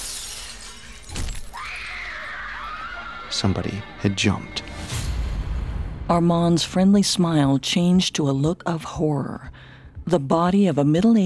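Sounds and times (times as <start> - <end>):
falling glass shards tinkling: 0.0 - 1.6
glass window shattering: 0.0 - 1.9
speech: 3.3 - 5.0, 6.1 - 11.2.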